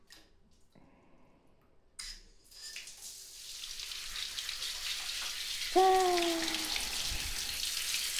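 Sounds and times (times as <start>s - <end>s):
shower water rinsing a person's hair: 2.8s - 8.1s
speech: 5.8s - 6.0s.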